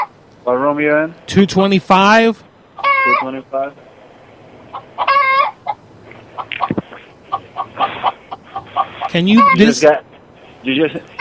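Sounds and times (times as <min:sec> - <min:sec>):
speech: 0:00.5 - 0:02.5, 0:03.1 - 0:03.9, 0:09.1 - 0:11.1
chicken squawking and clucking inside a room: 0:02.7 - 0:03.4, 0:04.6 - 0:09.8, 0:10.4 - 0:11.1.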